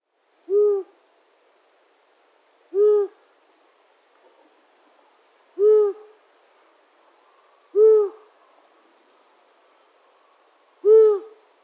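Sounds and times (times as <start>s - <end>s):
long-eared owl Asio otus hooting: 0.5s - 1.0s, 2.7s - 3.2s, 5.6s - 6.1s, 7.7s - 8.3s, 10.8s - 11.4s.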